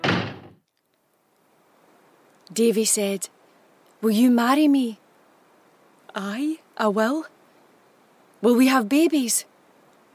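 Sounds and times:
heavy door slammed shut by a doorman: 0.0 - 0.6
speech: 2.5 - 3.4, 4.0 - 5.0, 6.1 - 7.4, 8.4 - 9.5.

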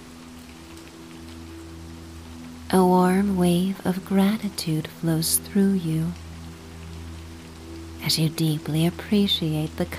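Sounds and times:
low constant hum: 0.0 - 9.9
steady rain falling: 0.0 - 9.9
speech: 2.7 - 6.2, 8.1 - 9.9.

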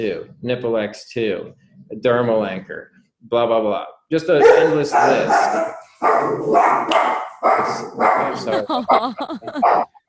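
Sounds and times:
speech: 0.0 - 9.9
blind and deaf dog barking short high yappy barks: 4.4 - 8.6, 9.6 - 9.9
laughter: 8.2 - 9.8.

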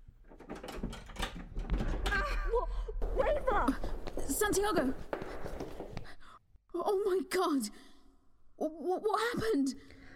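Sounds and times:
door rattling and clunking as it is unlocked: 0.2 - 2.4
speech: 3.6 - 5.4, 6.8 - 7.9, 8.6 - 9.9.

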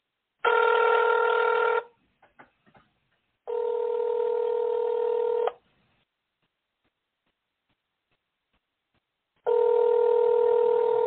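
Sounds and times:
telephone ringing in long steady electronic tones: 0.4 - 1.9, 3.5 - 5.6, 9.4 - 11.0.

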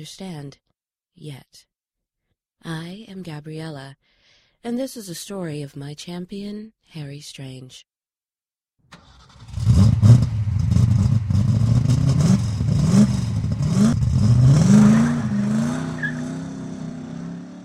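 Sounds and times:
speech: 0.0 - 1.7, 2.6 - 7.9
old F-Coupe accelerating hard: 9.0 - 17.6.

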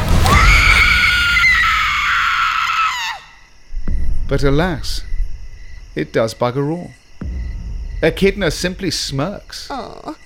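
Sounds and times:
woman's ear-piercing scream: 0.2 - 3.5
speech: 4.3 - 5.1, 6.0 - 7.0, 8.0 - 10.2.

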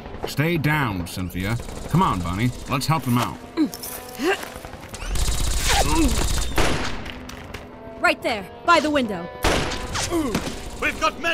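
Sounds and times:
speech: 0.3 - 4.6, 5.8 - 6.8, 8.0 - 11.3
gunfire exchange in a shootout at a house: 1.4 - 3.1, 5.1 - 7.0, 9.4 - 11.3.

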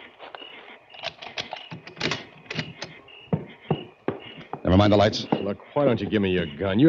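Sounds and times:
keys jingling and scraping in a lock: 1.0 - 2.9
speech: 4.7 - 6.8.

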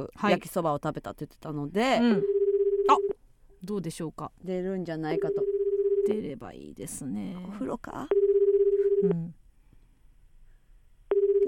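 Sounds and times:
speech: 0.0 - 2.4, 3.6 - 8.2, 9.0 - 9.4
telephone ringback tone while calling a mobile: 2.2 - 3.1, 5.2 - 6.2, 8.1 - 9.2, 11.1 - 11.4.

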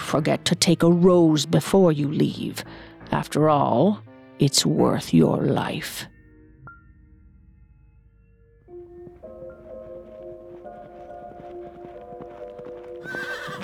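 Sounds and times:
speech: 0.1 - 6.1
horse hooves clip-clopping: 9.0 - 13.6
riderless horse whinnying and neighing: 13.0 - 13.6.

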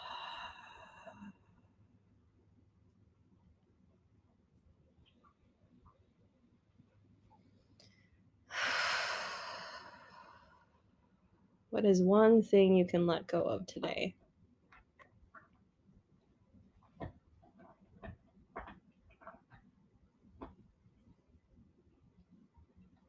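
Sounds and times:
slow exhale during a guided relaxation exercise: 0.0 - 1.4, 7.8 - 10.8
louder rushing breath: 8.5 - 10.7
speech: 11.8 - 14.2.

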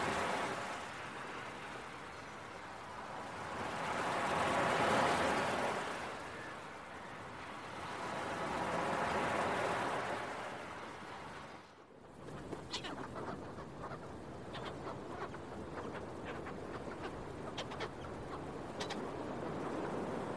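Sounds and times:
beach waves: 0.0 - 20.3
seagull calls: 12.6 - 19.1.

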